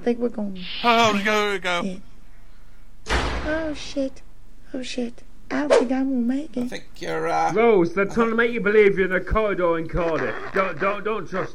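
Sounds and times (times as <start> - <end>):
speech: 0.0 - 2.1, 3.4 - 11.5
door slamming shut: 3.1 - 3.6.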